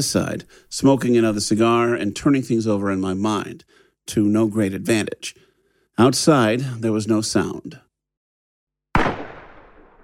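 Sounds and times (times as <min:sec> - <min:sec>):
speech: 0:00.0 - 0:05.4, 0:06.0 - 0:07.9
gunshot inside a house: 0:09.0 - 0:10.0.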